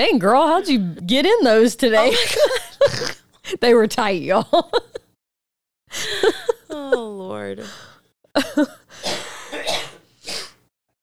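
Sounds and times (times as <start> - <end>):
speech: 0.0 - 5.0, 5.9 - 7.9, 8.6 - 8.8
laughter: 1.9 - 3.1, 4.3 - 5.0, 6.0 - 7.2, 8.4 - 8.9
harsh coughs: 2.4 - 3.3, 8.4 - 10.6.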